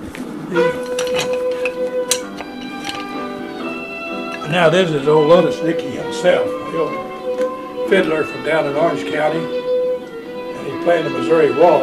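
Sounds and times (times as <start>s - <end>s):
speech: 0.5s - 0.8s, 4.5s - 7.1s, 7.9s - 9.6s, 10.8s - 11.8s
wooden spoons knocked together as a folk percussion instrument: 0.5s - 3.5s.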